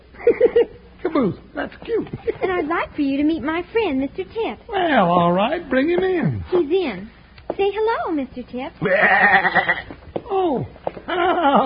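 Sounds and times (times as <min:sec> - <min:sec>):
speech: 0:00.2 - 0:11.6
billy goat bleating in an office: 0:08.8 - 0:10.0.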